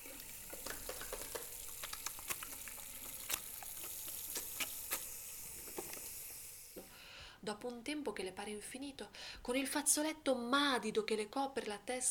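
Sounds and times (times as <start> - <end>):
laundry being scrubbed in a washtub of water: 0.0 - 6.1
speech: 7.5 - 12.0.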